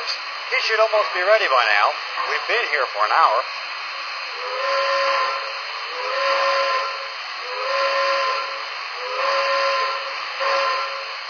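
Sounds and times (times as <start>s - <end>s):
steady rush of steam: 0.0s - 11.2s
speech: 0.5s - 3.7s
steam train whistle signalling departure: 4.3s - 11.2s.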